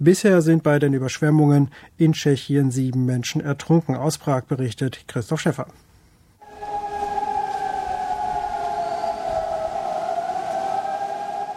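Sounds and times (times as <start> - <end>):
speech: 0.0 - 5.9
flood warning sirens wailing across riverside city districts: 6.4 - 11.5.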